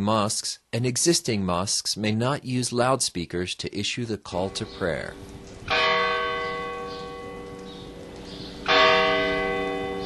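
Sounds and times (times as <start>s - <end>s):
speech: 0.0s - 5.4s
church bell tolling at La Mezquita in Córdoba, Spain: 5.7s - 8.0s, 8.6s - 10.0s.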